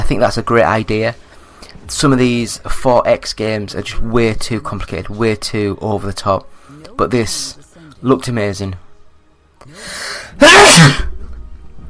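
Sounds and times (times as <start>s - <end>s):
speech: 0.1s - 8.8s, 9.6s - 11.1s
sneezes: 10.4s - 11.1s.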